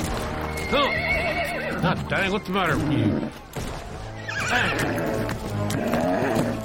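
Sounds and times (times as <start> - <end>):
horse whinnying as its rider urges it across a meadow: 0.4 - 3.4, 4.2 - 6.6
speech: 0.7 - 3.8, 4.5 - 6.4.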